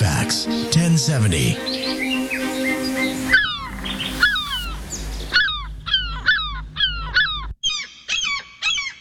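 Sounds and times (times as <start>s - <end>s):
speech: 0.3s - 2.1s
seagull squawking: 1.6s - 8.9s
low rumble: 3.2s - 7.6s.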